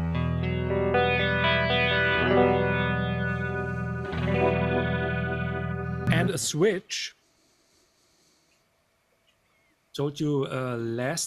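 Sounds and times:
electric guitar chords through a rotary speaker effect: 0.0 - 6.5
speech: 6.3 - 7.2, 10.0 - 11.2.

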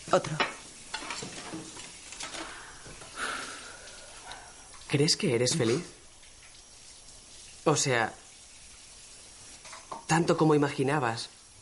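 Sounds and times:
running water splashing while washing dishes: 0.0 - 11.5
speech: 0.1 - 0.5, 4.9 - 6.0, 7.6 - 8.2, 10.1 - 11.4
crockery clinking and clattering while being handled: 0.2 - 2.6.

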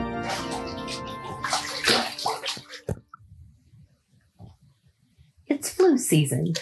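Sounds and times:
water pouring into a bathtub as it fills: 0.2 - 3.0, 6.5 - 6.6
speech: 6.1 - 6.6.

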